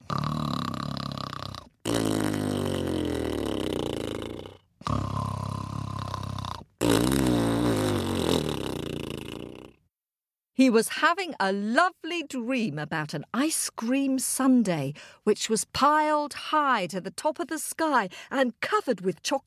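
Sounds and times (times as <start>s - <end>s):
loud guttural pig-like snoring: 0.0s - 9.8s
speech: 10.6s - 19.4s.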